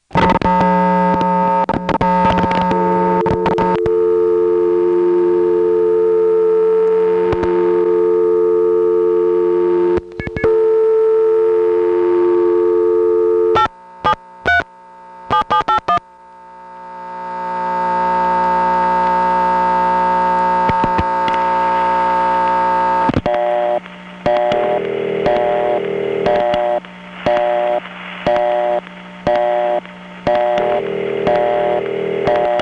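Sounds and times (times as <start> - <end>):
smooth phone line hum: 0.0 - 32.5
clicking on payphone line after pickup: 0.2 - 14.7, 15.3 - 16.1, 17.2 - 32.5.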